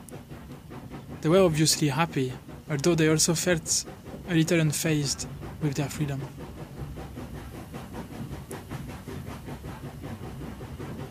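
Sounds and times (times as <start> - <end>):
train wheels clacking on rails: 0.0 - 11.0
speech: 1.2 - 6.4.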